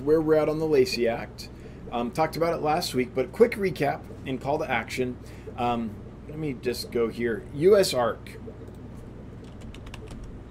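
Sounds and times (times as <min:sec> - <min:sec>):
speech: 0:00.0 - 0:08.6
steady low hum: 0:00.0 - 0:10.4
typing on a computer keyboard: 0:09.4 - 0:10.3.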